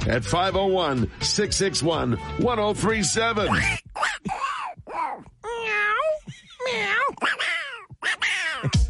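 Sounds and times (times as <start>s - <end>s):
speech: 0.0s - 4.1s
man in an office imitating a cat talking like a duck with warbling meow-like calls: 3.5s - 8.8s.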